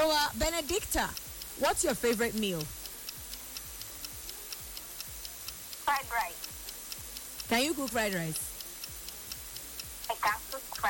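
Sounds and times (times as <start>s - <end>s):
game timer ticking: 0.0s - 10.8s
speech: 0.3s - 2.8s, 5.9s - 6.4s, 7.5s - 8.4s, 10.2s - 10.8s.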